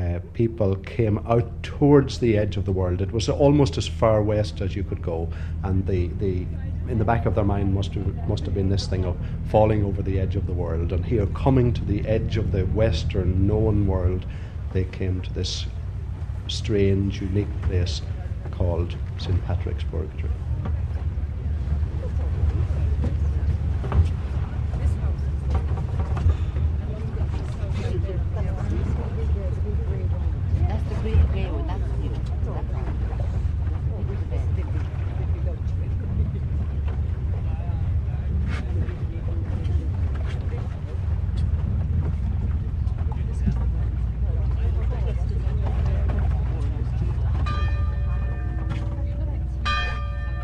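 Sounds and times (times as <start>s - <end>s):
boat engine rumble crossing open water to St. Patrick's Purgatory: 0.0s - 50.4s
wind buffeting the microphone: 0.0s - 50.4s
speech: 0.4s - 15.8s, 16.5s - 20.4s
ringing bell-like tone: 47.4s - 50.4s.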